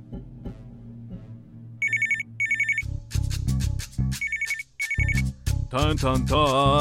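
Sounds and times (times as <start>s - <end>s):
telephone ringing with electronic trilling bursts: 1.8s - 2.9s, 4.2s - 5.2s
speech: 5.7s - 6.7s.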